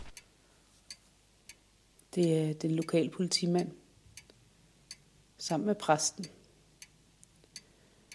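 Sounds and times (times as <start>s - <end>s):
clock ticking: 0.9s - 5.1s, 6.0s - 8.1s
speech: 2.1s - 3.8s, 5.4s - 6.4s.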